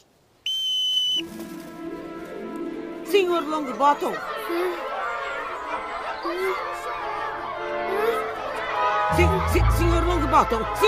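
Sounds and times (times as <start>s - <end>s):
referee's whistle blast: 0.5s - 1.2s
speech: 3.2s - 4.9s, 6.2s - 8.0s, 9.1s - 10.8s
laughter: 3.7s - 10.8s.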